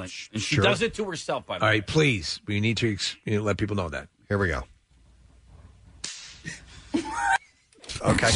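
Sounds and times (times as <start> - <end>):
speech: 0.0 - 4.7, 7.9 - 8.3
hand slapping chest with short ringing echo: 6.0 - 6.5.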